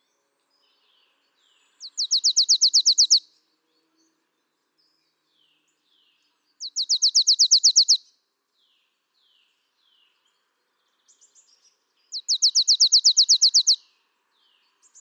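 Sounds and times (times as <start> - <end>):
marsh tit Poecile palustris call trills: 1.9 - 3.2, 6.7 - 8.0, 12.2 - 13.8.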